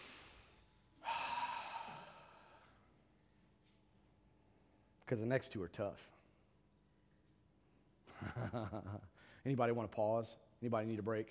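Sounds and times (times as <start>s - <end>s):
deep breath taken during a church service: 0.0s - 3.0s
speech: 5.1s - 6.2s, 8.2s - 11.2s.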